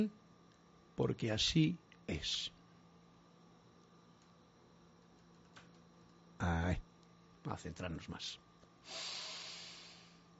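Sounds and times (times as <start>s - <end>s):
speech: 1.0s - 2.6s, 6.4s - 9.2s
deep breath: 8.8s - 10.3s.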